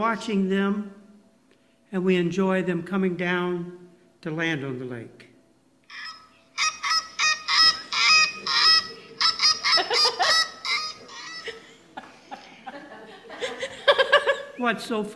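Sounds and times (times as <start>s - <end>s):
speech: 0.0s - 1.0s, 1.9s - 5.3s, 14.6s - 15.1s
Canada goose honking: 5.9s - 11.7s
laughter: 6.6s - 14.6s.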